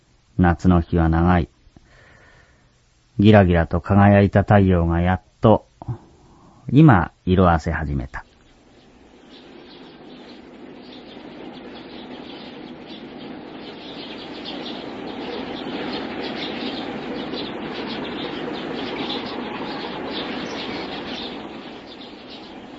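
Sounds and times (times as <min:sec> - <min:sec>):
large flock of sparrows chirping on a summer evening: 0:00.4 - 0:01.4, 0:06.8 - 0:22.7
speech: 0:00.4 - 0:01.5, 0:03.2 - 0:06.0, 0:06.7 - 0:08.2
faint rustle of sparrow wings: 0:08.1 - 0:22.7.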